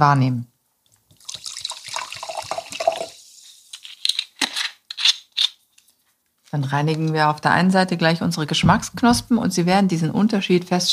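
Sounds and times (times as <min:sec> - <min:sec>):
speech: 0:00.0 - 0:00.5, 0:06.5 - 0:10.9
mineral water lower in calcium pouring into a glass during a water tasting: 0:01.1 - 0:03.4.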